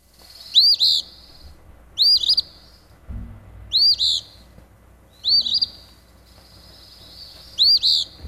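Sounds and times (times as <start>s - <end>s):
Eastern Phoebe singing rough raspy two-part phoebe song: 0.0s - 2.9s, 3.7s - 4.5s, 5.1s - 8.2s.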